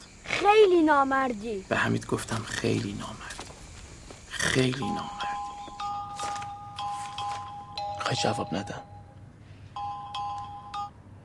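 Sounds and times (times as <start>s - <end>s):
speech: 0.4s - 3.3s, 4.5s - 5.2s, 8.1s - 8.9s
electronic ringtone of an incoming phone call: 4.8s - 11.0s.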